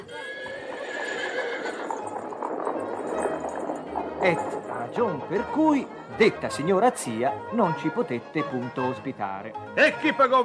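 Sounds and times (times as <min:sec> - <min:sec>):
horse neighing and whinnying: 0:00.0 - 0:02.4
horse hooves clip-clopping at a trot: 0:00.0 - 0:09.0
speech: 0:04.2 - 0:10.4.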